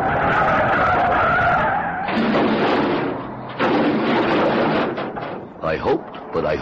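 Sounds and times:
car tires screeching in a skid while braking hard: 0.0s - 5.2s
speech: 5.8s - 6.5s.

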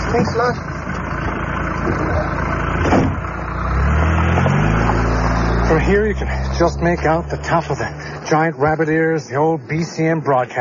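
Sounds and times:
speech: 0.1s - 0.7s, 1.8s - 3.2s, 5.7s - 10.5s
car engine rumbling and revving as the car pulls away: 1.8s - 8.4s.

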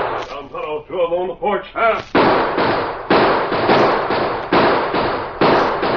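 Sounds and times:
gunshots in a Western shootout at a porch: 0.0s - 0.6s, 2.0s - 5.9s
speech: 0.7s - 2.8s.

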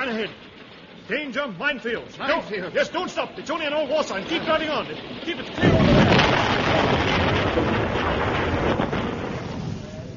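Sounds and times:
speech: 0.2s - 0.5s, 1.1s - 6.1s
loud explosion with roaring rumble: 4.0s - 10.1s.

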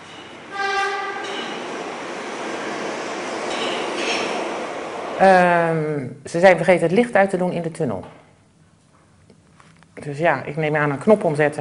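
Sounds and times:
metro train roaring and rumbling through a tunnel: 0.0s - 6.0s
metro train horn blaring: 0.4s - 1.7s
speech: 5.2s - 8.2s, 10.0s - 11.5s.

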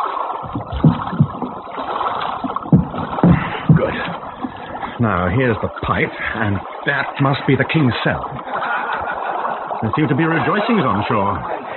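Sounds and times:
heavy thuds and splashes: 0.4s - 6.3s, 7.9s - 9.2s
boat dragged under a wall scraping and sloshing through water: 0.5s - 11.7s
laughter: 3.3s - 11.7s
speech: 5.0s - 8.6s, 9.8s - 11.6s.

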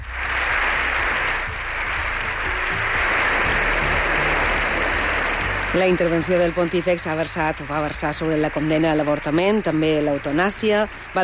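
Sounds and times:
ovation applause from a large crowd in parliament after a speech: 0.0s - 11.2s
speech: 5.8s - 11.2s.

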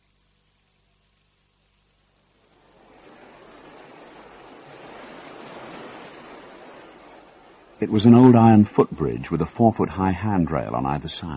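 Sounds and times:
turbulent water rushing: 2.3s - 11.3s
speech: 7.8s - 11.3s.

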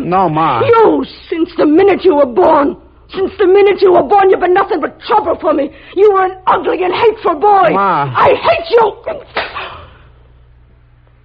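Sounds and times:
speech: 0.1s - 9.8s
slap to the face: 9.3s - 9.7s.

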